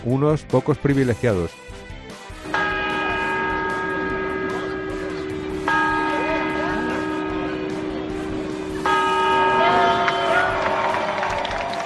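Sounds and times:
speech: 0.0 - 1.8
large clock-tower bell striking midnight chimes: 2.4 - 11.8
crowd murmuring: 2.8 - 11.8.

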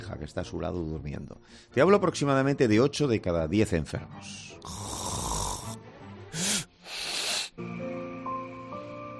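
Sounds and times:
speech: 0.1 - 5.3
loud rasping snores of a person with sleep apnea: 4.6 - 7.6.

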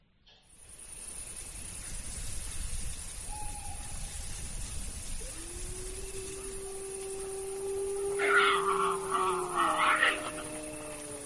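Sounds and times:
wolf's long sliding howl: 5.1 - 11.2.

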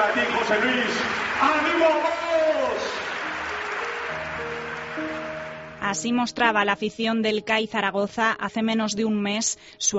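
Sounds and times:
large indoor arena crowd roaring and clapping: 0.0 - 5.8
speech: 0.1 - 3.0, 5.8 - 9.9.

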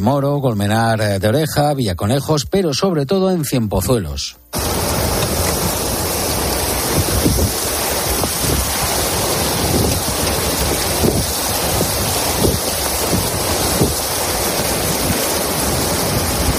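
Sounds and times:
speech: 0.0 - 4.7
flash flood torrent rushing through streets: 4.6 - 16.5
wind buffeting the microphone: 4.6 - 16.5.

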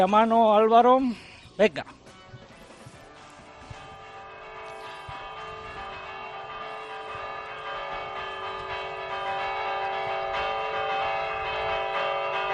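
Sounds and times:
speech: 0.0 - 2.0
church bells ringing a festive peal: 3.2 - 12.5.

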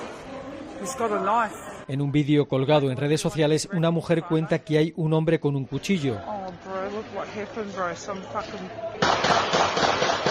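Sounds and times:
harsh noisy background: 0.0 - 10.2
speech: 0.8 - 6.4, 7.0 - 9.9
rapid burst of loud police gunshots: 9.0 - 10.2.

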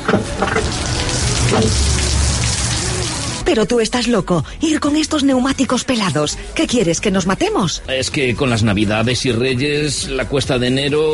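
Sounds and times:
heavy rain and hail pounding down on a winter day: 0.4 - 3.4
speech: 3.5 - 11.1.

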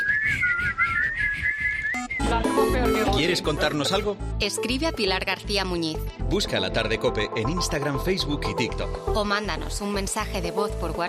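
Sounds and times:
person whistling a wavering tune: 0.0 - 3.2
speech: 3.2 - 11.0.

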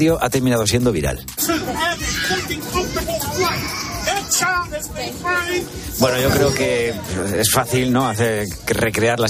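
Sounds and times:
speech: 0.0 - 9.2
baby crying in an airplane cabin on a domestic flight in the United States: 1.5 - 5.6
other children's voices in an airplane cabin: 1.5 - 5.6.

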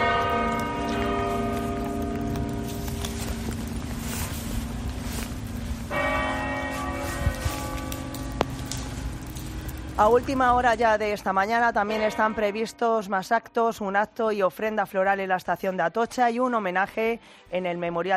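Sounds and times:
several church bells pealing: 0.0 - 13.0
speech: 10.0 - 18.1.

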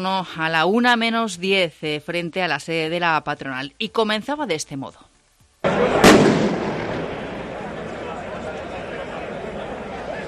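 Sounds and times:
speech: 0.0 - 5.1
outdoor crowd noise at a street demonstration: 5.4 - 10.2
firecracker bang at a street demonstration: 5.6 - 7.8
lingering rumble: 5.7 - 10.0.

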